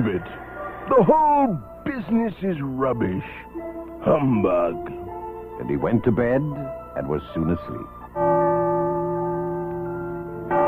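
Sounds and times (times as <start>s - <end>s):
speech: 0.0s - 5.0s, 5.6s - 8.3s
neighbouring church bell striking midnight: 8.1s - 10.6s.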